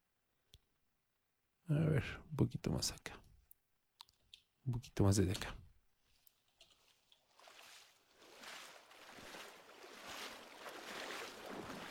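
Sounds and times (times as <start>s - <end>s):
speech: 1.7s - 3.2s, 4.7s - 5.6s
person wading through water with sloshing splashes: 6.1s - 11.8s.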